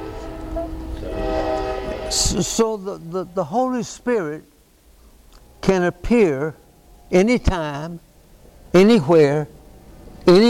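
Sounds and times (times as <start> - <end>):
train whistle blowing: 0.0 - 2.8
low rumbling background: 0.0 - 10.4
speech: 2.1 - 4.5, 5.6 - 8.1, 8.7 - 9.6, 10.2 - 10.4.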